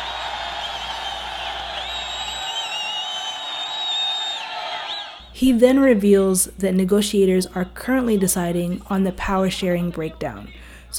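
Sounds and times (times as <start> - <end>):
large crowd cheering: 0.0 - 5.3
shrill whistles: 0.0 - 5.3
speech: 5.4 - 10.9.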